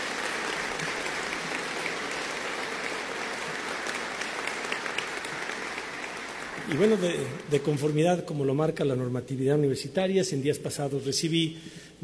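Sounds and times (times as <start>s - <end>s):
audience applause: 0.0s - 8.1s
speech: 6.7s - 12.0s.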